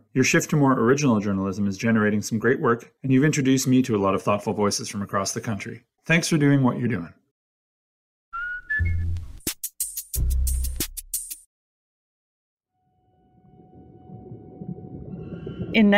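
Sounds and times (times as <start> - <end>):
speech: 0.1 - 7.2, 15.8 - 15.9
orca killer whale rising whistles and pulsed squeals underwater: 8.4 - 9.2.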